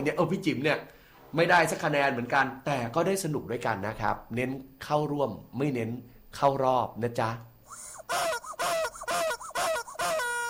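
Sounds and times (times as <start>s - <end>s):
speech: 0.0s - 7.5s
chickens clucking and calling outside: 7.7s - 10.4s.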